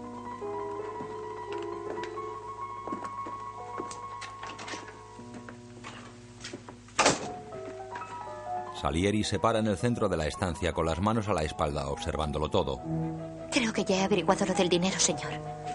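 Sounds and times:
quiet orchestral music: 0:00.0 - 0:06.4, 0:07.3 - 0:15.7
door closing in an eighteenth-century salon: 0:07.0 - 0:07.4
speech: 0:08.8 - 0:15.7.

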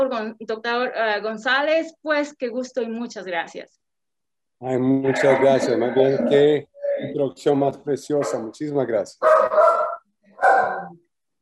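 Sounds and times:
speech: 0:00.0 - 0:03.8, 0:04.6 - 0:09.7
female dog giving drawn-out whining barks: 0:09.2 - 0:10.9.

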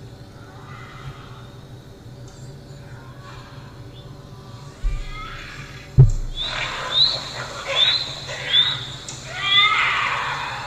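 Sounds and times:
low thumps: 0:04.8 - 0:06.9
bobcat screeching: 0:04.8 - 0:10.6.

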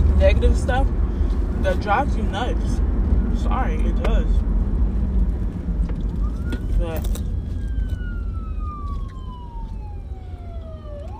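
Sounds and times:
heavy wind rumble: 0:00.0 - 0:11.1
speech: 0:00.2 - 0:04.6, 0:06.8 - 0:07.2
fire department vehicle siren passing: 0:06.1 - 0:11.1.

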